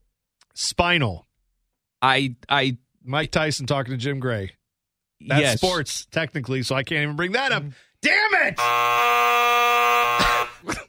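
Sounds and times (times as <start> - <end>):
speech: 0.6 - 1.3, 2.0 - 4.6, 5.2 - 10.8
buzzer sounding a loud harsh electronic tone: 8.6 - 10.7.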